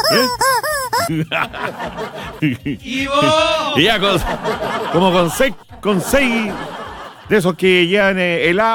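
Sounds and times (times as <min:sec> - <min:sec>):
rubber chicken toy honking with its neck pulled: 0:00.0 - 0:01.1
speech: 0:00.1 - 0:00.4, 0:01.1 - 0:08.7
people laughing: 0:01.0 - 0:07.7.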